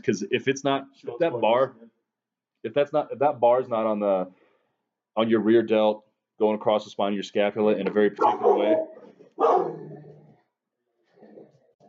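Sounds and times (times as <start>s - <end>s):
speech: 0.0s - 1.8s, 2.6s - 4.4s, 5.2s - 9.8s
dog barking: 8.2s - 10.2s.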